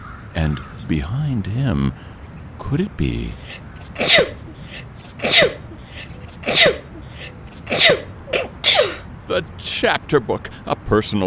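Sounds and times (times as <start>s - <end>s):
speech: 0.4s - 5.6s, 9.3s - 11.2s
person sneezing: 3.4s - 9.0s.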